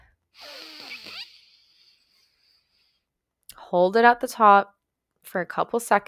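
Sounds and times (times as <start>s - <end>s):
deep inhale through the nose during a guided breathing exercise: 0.4s - 3.1s
speech: 3.7s - 6.0s.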